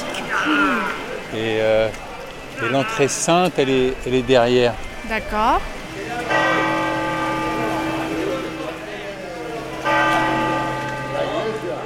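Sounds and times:
faint voices murmuring: 0.0 - 11.8
speech: 0.4 - 5.8
large cathedral bells ringing: 6.0 - 11.8.

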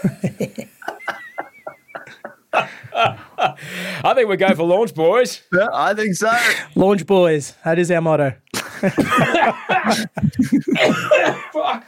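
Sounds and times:
speech: 0.0 - 0.3, 4.0 - 11.8
laughter: 0.0 - 3.8, 8.6 - 11.8
short breaths: 2.6 - 4.1
person coughing: 10.7 - 11.5.

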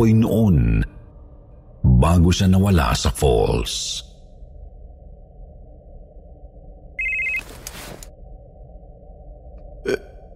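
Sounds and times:
speech: 0.0 - 0.9, 2.0 - 4.1
hum: 0.0 - 10.3
cellphone ringing with incoming call: 7.0 - 7.5.

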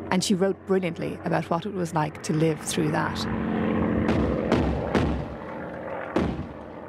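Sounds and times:
aircraft droning overhead: 0.0 - 6.8
speech: 0.1 - 4.3
anti-aircraft gunfire bursts: 4.0 - 6.7.

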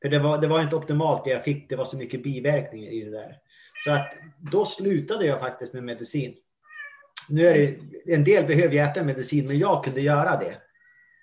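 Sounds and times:
speech: 0.0 - 6.4, 7.2 - 10.6
cat meowing: 3.8 - 4.4, 6.6 - 7.2.

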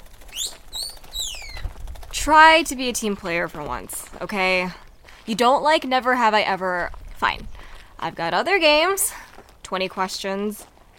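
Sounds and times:
mockingbird whistling: 0.2 - 1.6
speech: 2.2 - 10.7.

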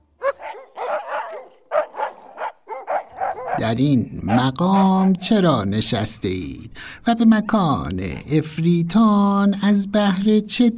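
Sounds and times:
two black dogs barking: 0.2 - 5.4
speech: 3.6 - 10.7.

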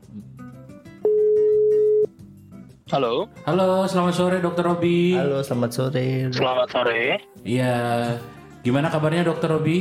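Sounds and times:
phone ringback tone while placing a call to a doctor: 1.0 - 2.1
speech: 2.9 - 9.7.

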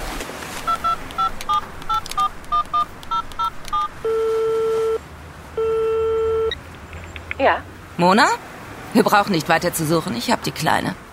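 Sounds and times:
mobile phone keypad beeps: 0.7 - 5.0
phone line ringing tones: 0.7 - 5.0, 5.6 - 6.6
speech: 7.4 - 11.0.

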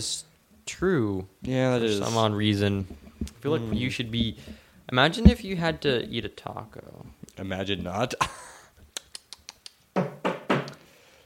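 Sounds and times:
speech: 0.0 - 8.5
knocking on a ceiling: 2.8 - 5.8, 10.0 - 10.7.

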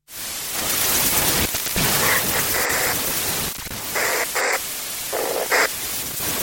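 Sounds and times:
radio static hiss: 0.0 - 6.4
garbled tone-like radio squelch bursts: 1.6 - 6.4.

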